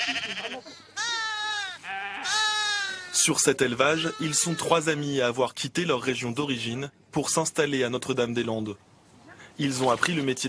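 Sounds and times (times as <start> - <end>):
sheep bleating on a small sheep farm near Nantes France: 0.0 - 4.9
speech: 3.2 - 8.9, 9.6 - 10.4.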